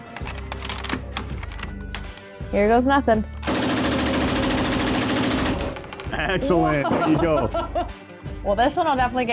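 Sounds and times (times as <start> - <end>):
speech: 2.5 - 3.4, 6.2 - 9.3
fully automatic machine gun firing: 3.4 - 6.0
laughter: 6.2 - 8.0.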